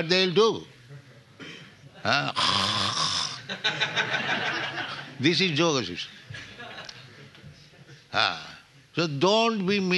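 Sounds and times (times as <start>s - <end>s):
speech: 0.0s - 0.8s, 2.0s - 6.4s, 8.1s - 9.9s
man imitating snoring with his voice: 2.3s - 3.4s
laughter: 3.4s - 5.3s, 6.1s - 8.1s.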